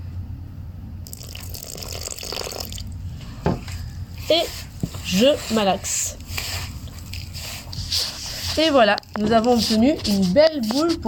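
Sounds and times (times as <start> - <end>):
water pouring into dough mixture: 1.1 - 2.9
speech: 4.3 - 6.2, 8.6 - 11.0.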